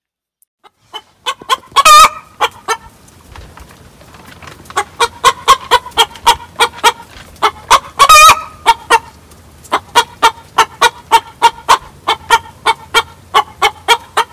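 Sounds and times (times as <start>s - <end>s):
hen's egg song clucking: 0.6s - 3.0s, 4.7s - 14.3s.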